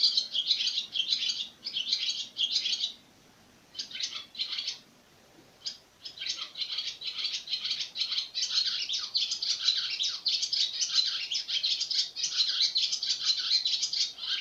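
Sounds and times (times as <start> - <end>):
swallow twittering: 0.0 - 3.0, 3.7 - 4.8, 5.6 - 14.3.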